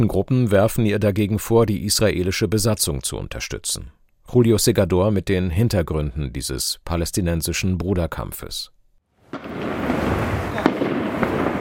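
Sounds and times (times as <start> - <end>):
speech: 0.0 - 10.0
automatic weapons fire during armed clashes near a refugee camp in Jenin: 9.3 - 11.6.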